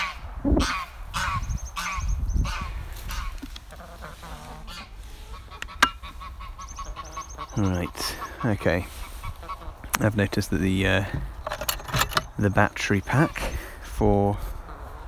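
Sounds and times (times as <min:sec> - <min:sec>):
goose honking: 0:00.0 - 0:09.9
speech: 0:00.4 - 0:00.9, 0:07.6 - 0:09.0, 0:10.0 - 0:11.3, 0:12.4 - 0:14.5
sharp click: 0:05.6 - 0:06.0.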